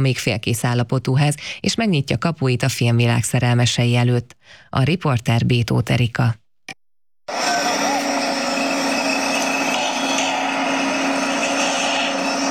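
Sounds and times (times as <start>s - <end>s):
speech: 0.0s - 6.4s
construction site machinery droning: 7.3s - 12.4s.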